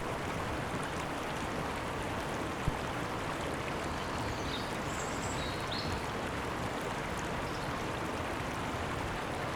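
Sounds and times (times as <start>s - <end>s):
river water rushing: 0.0s - 9.5s.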